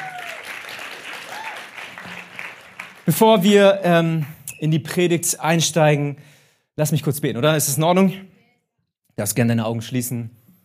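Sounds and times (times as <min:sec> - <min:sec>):
crowd applauding: 0:00.0 - 0:03.5
speech: 0:03.1 - 0:08.3, 0:09.2 - 0:10.4.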